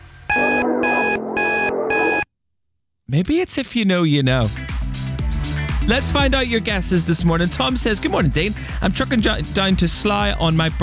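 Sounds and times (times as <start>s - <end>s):
song playing: 0.3s - 2.2s, 4.5s - 10.8s
electronic alarm beeping: 0.3s - 2.3s
speech: 3.1s - 4.8s, 5.9s - 10.8s.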